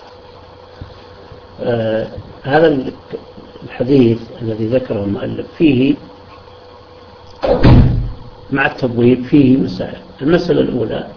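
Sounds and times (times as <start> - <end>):
speech: 1.6 - 6.1, 8.5 - 11.1
door pushed shut: 7.4 - 8.3.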